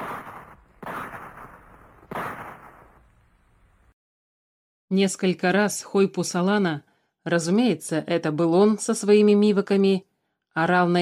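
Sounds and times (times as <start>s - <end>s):
gunshots echoing in the mountains: 0.0s - 3.2s
speech: 4.9s - 10.9s.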